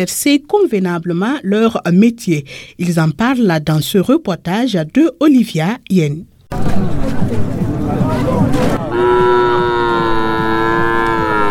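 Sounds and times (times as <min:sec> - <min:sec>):
speech: 0:00.0 - 0:07.0
busy crowd chattering at a livestock market: 0:06.5 - 0:10.2
cow mooing at a livestock market: 0:08.9 - 0:11.4.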